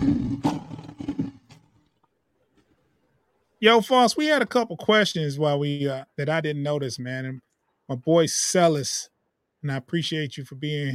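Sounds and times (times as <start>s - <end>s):
lion roaring: 0.0s - 1.6s
speech: 3.6s - 10.9s.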